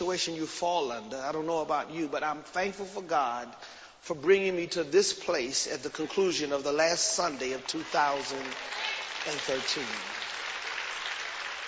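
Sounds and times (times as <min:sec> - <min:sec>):
speech: 0:00.1 - 0:10.2
church congregation applauding at the close of a Sunday service: 0:06.8 - 0:11.6.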